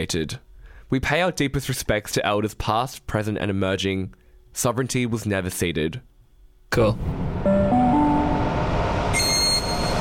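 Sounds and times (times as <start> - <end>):
speech: 0.0 - 6.1, 6.7 - 7.6
electric train steady rumble at a station platform: 6.9 - 9.2
electric train motor whine at a station platform: 7.1 - 9.9
brief high electronic tone: 7.2 - 9.9.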